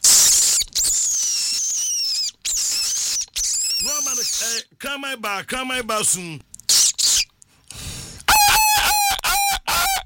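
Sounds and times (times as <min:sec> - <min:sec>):
eagle cry: 0:00.3 - 0:04.6, 0:08.3 - 0:10.0
speech: 0:04.8 - 0:06.5.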